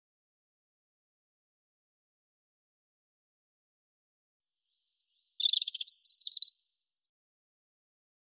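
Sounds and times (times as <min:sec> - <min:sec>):
European robin singing: 0:04.7 - 0:07.0.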